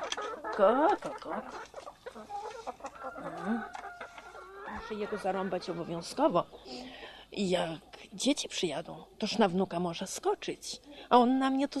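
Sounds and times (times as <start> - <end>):
hens clucking while being fed: 0.0 - 8.1
speech: 0.6 - 2.3, 3.2 - 3.8, 4.7 - 11.7.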